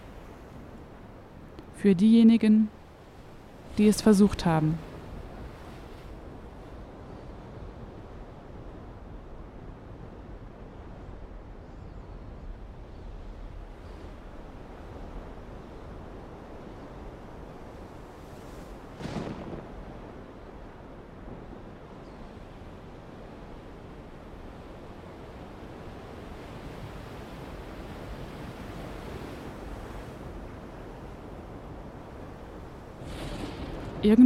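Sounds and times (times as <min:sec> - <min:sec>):
ocean waves on the open Atlantic: 0:00.0 - 0:11.5, 0:12.6 - 0:34.2
wind out on the open Atlantic: 0:00.0 - 0:34.2
speech: 0:01.8 - 0:02.8, 0:03.8 - 0:04.9.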